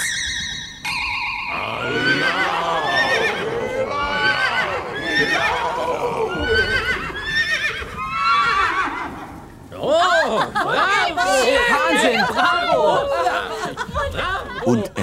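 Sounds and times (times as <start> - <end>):
chorus of horses whinnying and neighing at a stable door: 0.0 - 9.6
brief shimmering tone: 0.8 - 2.4
laughter: 1.5 - 7.1, 9.8 - 15.0.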